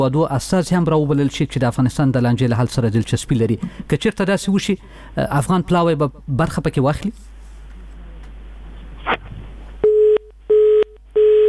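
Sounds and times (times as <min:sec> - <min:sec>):
speech: 0:00.0 - 0:07.3
telephone busy tone after the line disconnects: 0:09.8 - 0:11.4.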